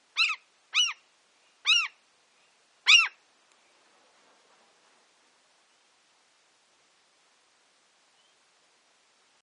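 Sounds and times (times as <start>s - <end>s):
ashy gull calling: 0.2s - 1.0s, 1.7s - 2.0s, 2.9s - 3.2s.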